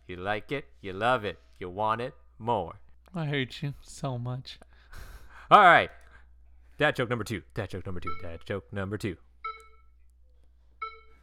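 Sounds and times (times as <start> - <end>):
speech: 0.1 - 6.0, 6.8 - 9.3
electronic beeps played by a person: 9.4 - 9.9, 10.8 - 11.2.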